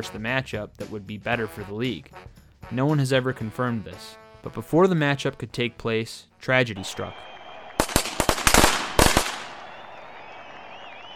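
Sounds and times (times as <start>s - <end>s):
speech: 0.0s - 7.3s
firecrackers popping: 6.8s - 11.1s.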